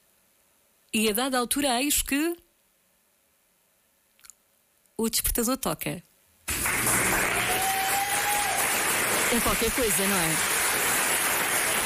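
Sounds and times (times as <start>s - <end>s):
speech: 0.9s - 2.4s, 5.0s - 6.1s, 9.3s - 10.5s
audience applause with many clapping hands: 6.5s - 11.8s.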